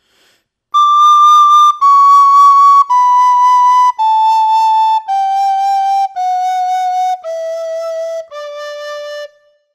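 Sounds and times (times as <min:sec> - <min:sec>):
Galician whistle blowing with vibrato during tuning: 0:00.8 - 0:06.3.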